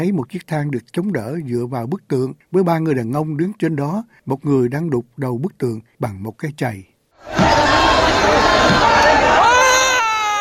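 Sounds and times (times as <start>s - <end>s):
speech: 0.0s - 8.9s
angry crowd shouting at a protest: 7.2s - 10.3s
rising cry: 7.2s - 10.3s.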